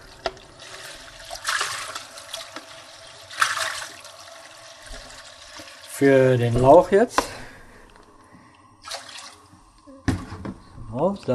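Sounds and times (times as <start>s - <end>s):
tap water rushing and splashing into a cooking pot: 0.0s - 5.9s
speech: 6.0s - 7.4s.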